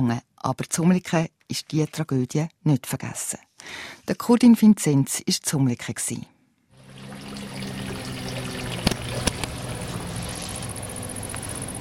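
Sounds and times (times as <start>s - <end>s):
speech: 0.0s - 6.3s
water splashing into a village fountain basin: 6.8s - 10.8s.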